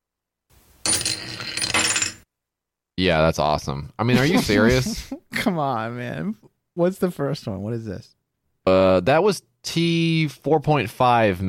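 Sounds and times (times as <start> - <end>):
coins tinkling and clattering down a spiral tube: 0.8 - 2.2
speech: 3.0 - 11.4
laughter: 4.1 - 5.3.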